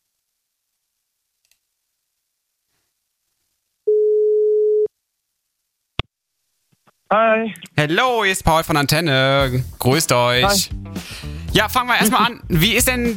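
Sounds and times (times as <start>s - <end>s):
telephone ringback tone while placing a call: 3.9s - 4.9s
speech: 7.1s - 13.1s.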